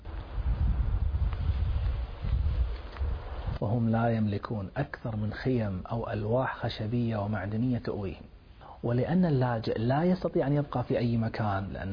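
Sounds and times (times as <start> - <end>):
snowstorm wind roaring: 0.0 - 4.7
speech: 3.6 - 11.9.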